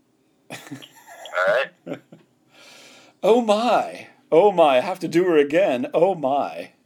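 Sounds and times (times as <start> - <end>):
speech: 0.7 - 0.9, 3.2 - 6.8
gasping grunts: 1.2 - 1.8
person's voice imitating a donkey braying: 1.2 - 1.8.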